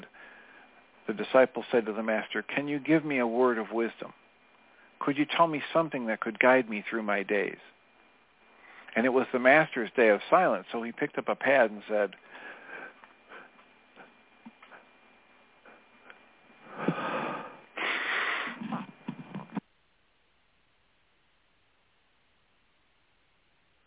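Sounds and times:
speech: 1.1s - 4.2s, 5.0s - 7.8s, 9.0s - 12.5s
faint sniffs and breaths: 12.2s - 15.0s, 15.6s - 19.6s
stifled sneeze: 16.8s - 19.6s.

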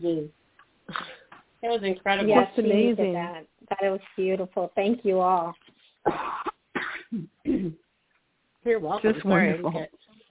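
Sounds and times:
speech: 0.0s - 0.4s, 1.7s - 6.4s, 8.6s - 10.0s
person coughing from a tickle in the throat: 0.9s - 1.3s, 6.0s - 7.8s
throat clearing: 0.9s - 1.3s, 6.0s - 7.8s.

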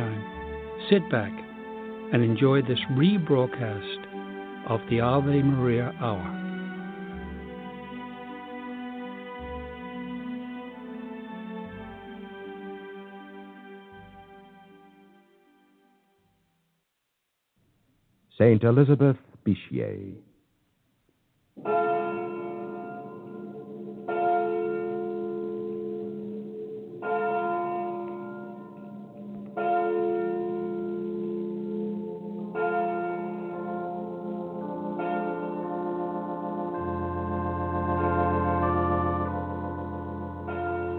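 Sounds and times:
church bell tolling: 0.0s - 8.5s, 21.6s - 40.9s
speech: 0.9s - 1.4s, 2.1s - 6.4s, 18.4s - 20.3s.

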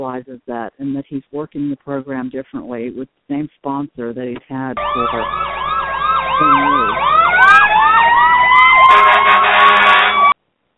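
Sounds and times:
speech: 0.0s - 5.7s, 6.4s - 7.1s
several emergency vehicle sirens wailing: 4.8s - 10.4s.

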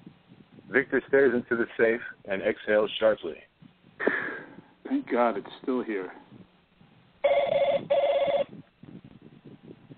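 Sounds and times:
speech: 0.7s - 4.1s, 4.9s - 6.2s
telephone ringing with warbling trill: 7.2s - 8.6s.

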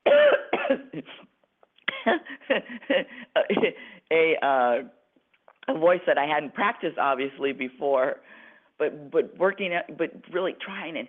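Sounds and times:
person coughing: 0.0s - 1.2s
person clearing throat: 0.1s - 1.2s
speech: 0.7s - 1.2s, 2.1s - 5.0s, 5.7s - 11.0s.

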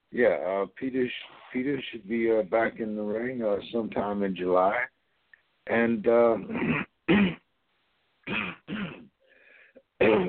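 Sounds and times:
speech: 0.1s - 4.9s, 5.6s - 6.9s
person with rough throat clearing and coughing: 6.4s - 7.5s, 8.2s - 9.2s, 10.0s - 10.2s.

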